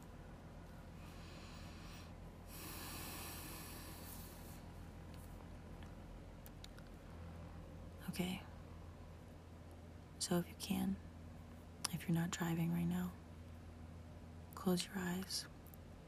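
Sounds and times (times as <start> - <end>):
low steady hum: 0.0 - 16.0
slow deep breathing in a guided breathing exercise: 0.9 - 5.0
speech: 8.1 - 8.5, 10.2 - 11.1, 11.9 - 13.2, 14.6 - 15.5.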